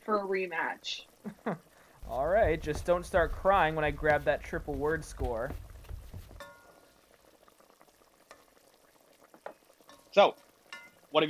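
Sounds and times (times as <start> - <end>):
pot of potatoes boiling on stove: 0.0 - 11.2
speech: 0.1 - 5.7, 10.2 - 10.4
metallic clank of the pot: 6.2 - 6.8, 10.7 - 11.0.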